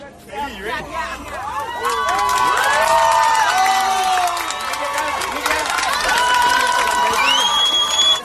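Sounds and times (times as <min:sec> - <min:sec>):
crowd cheering and shouting at a rescue: 0:01.2 - 0:08.2
sharp whistles from a crowd: 0:07.2 - 0:08.2.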